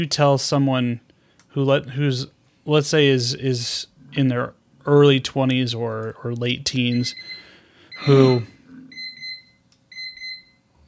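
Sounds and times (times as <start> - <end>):
speech: 0.0 - 7.4, 8.0 - 8.6
faint low hum: 0.0 - 10.8
electronic alarm clock beeping with high-pitched tones: 6.8 - 10.7.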